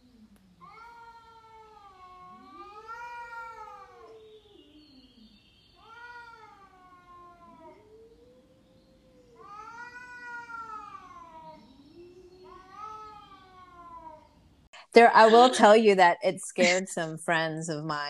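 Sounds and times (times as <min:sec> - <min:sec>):
cat caterwauling: 0:00.6 - 0:05.1, 0:05.8 - 0:14.4
speech: 0:15.0 - 0:18.0.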